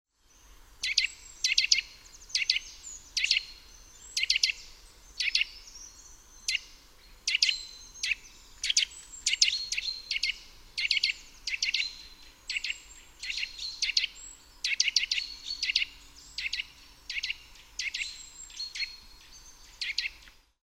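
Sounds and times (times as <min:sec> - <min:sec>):
Sitta europaea: 0:00.3 - 0:20.4.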